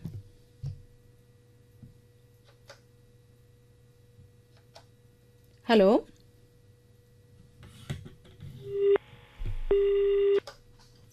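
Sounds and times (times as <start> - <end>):
speech: 5.7 - 6.1
two steady electronic telephone tones from a call coming in to a radio phone-in: 8.6 - 10.4.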